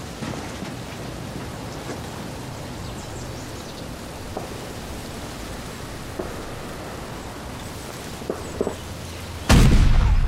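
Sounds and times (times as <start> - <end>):
steady hiss: 0.0 - 10.0
artillery fire: 9.5 - 10.2.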